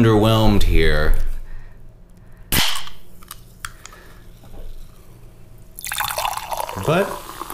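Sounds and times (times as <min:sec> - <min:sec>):
speech: 0:00.0 - 0:01.3, 0:06.9 - 0:07.2
bottle of German-style light lager opening with a hissing pop: 0:02.5 - 0:03.0
very pale clear beer pouring into a glass: 0:05.8 - 0:07.5.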